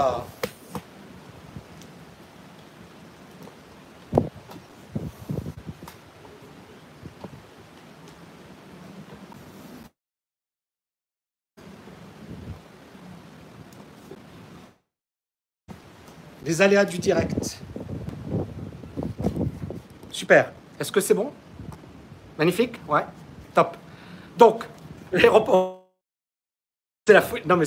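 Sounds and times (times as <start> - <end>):
speech: 0.0 - 0.4, 16.5 - 17.7, 20.2 - 21.4, 22.4 - 23.8, 24.4 - 25.7, 27.1 - 27.6
light rain falling: 0.0 - 9.5, 11.6 - 14.8, 15.7 - 25.6
low rumbling wind buffeting a microphone outdoors: 4.1 - 7.6, 12.2 - 12.7, 17.0 - 20.1.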